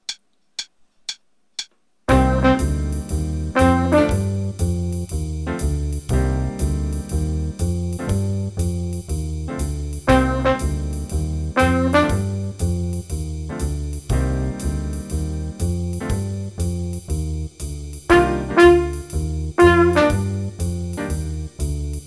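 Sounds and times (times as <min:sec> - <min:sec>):
trumpet: 0:02.1 - 0:04.8, 0:10.0 - 0:12.7, 0:18.1 - 0:20.8
jazz improvisation in C minor with jazz rhythms: 0:02.1 - 0:22.0.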